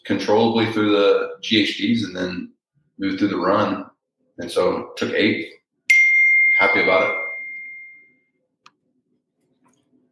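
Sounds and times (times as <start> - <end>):
speech: 0.1 - 5.6, 6.6 - 7.2
phone text-message alert chime: 5.9 - 8.3.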